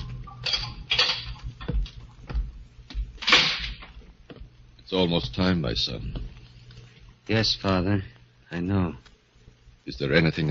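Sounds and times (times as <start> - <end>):
footsteps in a prison death-house corridor: 0.0 - 7.2
speech: 4.9 - 6.4, 7.3 - 9.1, 9.9 - 10.4.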